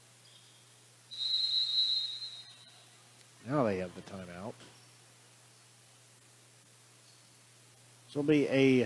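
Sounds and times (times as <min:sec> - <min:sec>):
low hum of noise: 0:00.0 - 0:08.8
referee's whistle blast at basketball game: 0:01.1 - 0:02.8
speech: 0:03.4 - 0:04.8, 0:08.1 - 0:08.8.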